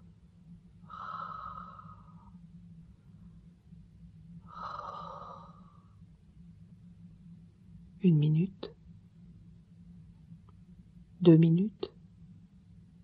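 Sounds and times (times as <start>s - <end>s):
steady low hum: 0.0s - 13.0s
sleeping man breathing with a raspy edge: 0.8s - 2.4s, 4.4s - 6.0s
speech: 8.0s - 8.7s, 11.2s - 11.8s.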